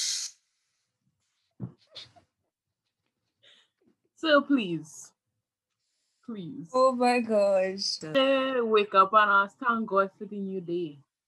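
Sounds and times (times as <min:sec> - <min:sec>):
voice imitating steam hissing from a nose: 0:00.0 - 0:00.4
speech: 0:04.2 - 0:05.1, 0:06.3 - 0:11.1.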